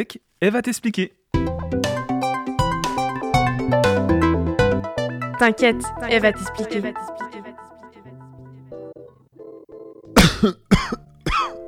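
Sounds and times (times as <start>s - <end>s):
speech: 0.0s - 1.2s, 5.4s - 7.2s, 10.4s - 10.7s
soft melodic music bed: 1.4s - 10.1s, 11.0s - 11.6s
man coughing: 10.2s - 11.6s.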